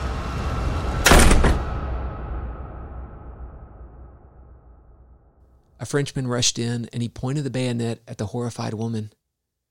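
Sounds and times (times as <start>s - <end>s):
musket butt striking a wooden door: 0.1s - 2.0s
speech: 5.8s - 9.2s.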